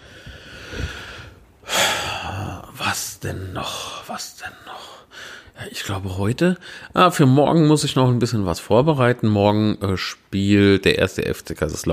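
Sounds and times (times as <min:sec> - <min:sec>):
heavy rasping breathing: 0:00.0 - 0:02.8, 0:03.6 - 0:05.6, 0:06.6 - 0:07.0
speech: 0:03.2 - 0:11.9.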